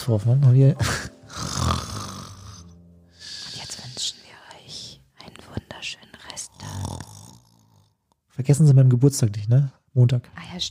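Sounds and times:
speech: 0.0s - 1.5s, 8.5s - 10.6s
person loudly imitating snoring: 1.3s - 3.6s, 6.5s - 8.0s.

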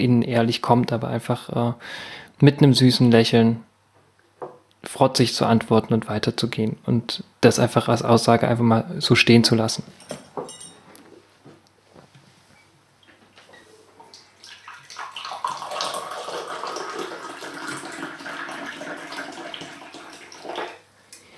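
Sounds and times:
speech: 0.0s - 3.7s, 4.8s - 10.5s
ginger tea poured from a pot into a cup: 14.4s - 20.8s.

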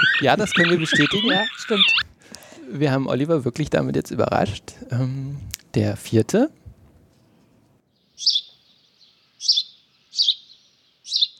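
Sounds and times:
house sparrow chirping: 0.0s - 2.0s, 8.0s - 11.3s
laughter: 0.0s - 2.0s
speech: 0.2s - 2.1s, 2.7s - 6.6s, 8.2s - 8.4s.

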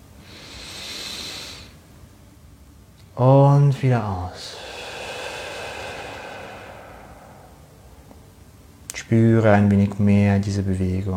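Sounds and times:
deep inhale during meditation: 0.2s - 1.8s, 4.3s - 8.6s
speech: 3.2s - 4.6s, 9.1s - 11.1s.

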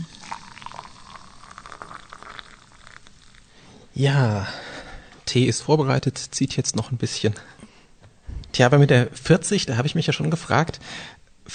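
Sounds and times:
water boiling in a kettle: 0.0s - 3.6s
speech: 4.0s - 4.7s, 5.3s - 7.6s, 8.6s - 11.5s.

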